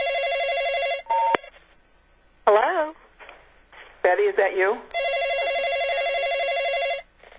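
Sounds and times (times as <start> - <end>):
electronic telephone ring: 0.0 - 1.5, 5.0 - 7.1
speech: 4.1 - 5.0.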